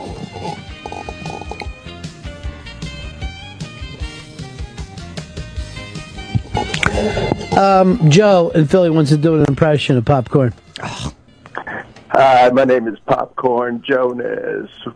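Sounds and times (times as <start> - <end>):
voice imitating a fart: 0.0 - 1.7, 6.4 - 7.6
speech: 7.0 - 11.0, 12.2 - 14.9.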